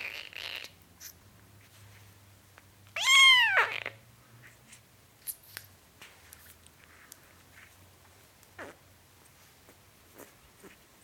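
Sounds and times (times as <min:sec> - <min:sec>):
four-week-old kitten mewing while drinking milk from a bottle: 0:03.0 - 0:04.0.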